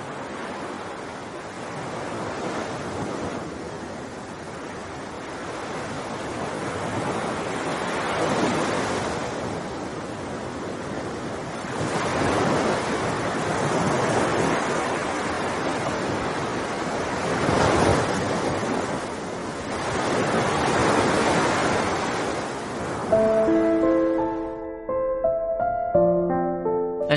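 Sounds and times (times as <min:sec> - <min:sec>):
Caribbean sea waves crashing on shore: 0:00.0 - 0:24.2
burst of tonal music: 0:23.1 - 0:27.1.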